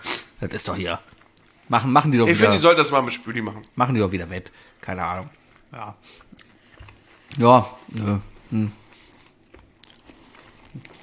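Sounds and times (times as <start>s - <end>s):
speech: 0.4s - 1.1s, 1.7s - 6.5s, 7.3s - 8.8s
moist chewing of food with soft crunches and smacks: 4.7s - 8.1s, 8.8s - 11.0s.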